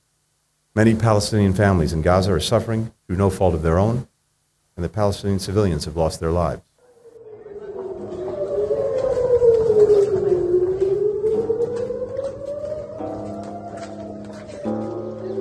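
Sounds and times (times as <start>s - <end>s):
speech: 0.8s - 4.1s, 4.8s - 6.7s
overlapping air raid sirens wailing: 6.8s - 15.3s.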